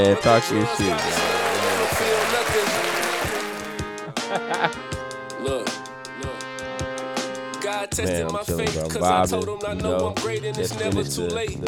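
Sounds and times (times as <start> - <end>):
speech: 0.0 - 1.3, 4.3 - 5.8, 7.7 - 11.6
thumping music beat: 0.0 - 11.6
laughter: 0.6 - 5.6
crowd clapping and applauding loudly: 0.8 - 4.0.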